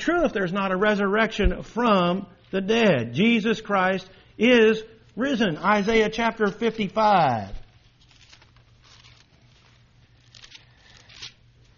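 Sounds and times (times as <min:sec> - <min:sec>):
speech: 0:00.0 - 0:07.6
low steady hum: 0:00.0 - 0:11.7
Bible pages turning: 0:05.7 - 0:11.7.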